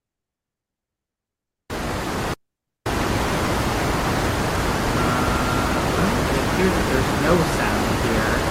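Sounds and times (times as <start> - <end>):
loud steady broadband static hiss: 1.7 - 8.4.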